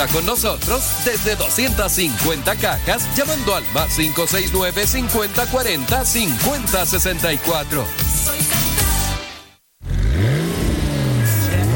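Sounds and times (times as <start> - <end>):
speech: 0.0 - 8.4
sports car engine revving: 9.8 - 11.7.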